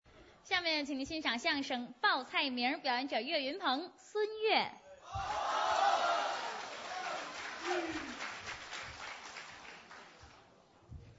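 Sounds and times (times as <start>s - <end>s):
speech: 0.5s - 5.8s
cheering voices: 5.1s - 8.3s
audience applause in a hall: 5.3s - 10.4s.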